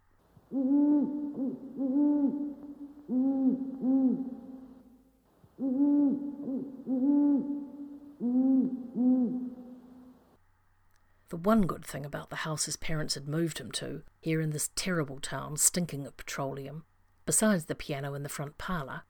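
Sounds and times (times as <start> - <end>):
owl hooting at night: 0.4 - 10.4
speech: 0.5 - 4.4, 11.4 - 19.0.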